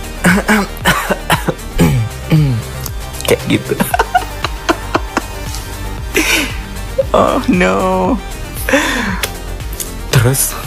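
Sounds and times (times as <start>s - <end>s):
person imitating coughing and throat clearing: 0.2s - 2.8s
speech: 0.3s - 1.2s, 3.3s - 4.1s, 7.1s - 9.3s, 10.2s - 10.6s
laughter: 3.6s - 5.4s.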